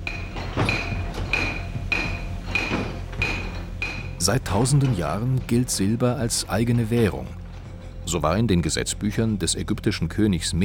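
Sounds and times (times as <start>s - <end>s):
water-wheel-driven trip hammer pounding metal at 17th-century hammer mill near Annaberg-Buchholz: 0.0s - 6.9s
speech: 4.2s - 7.4s, 8.1s - 10.6s.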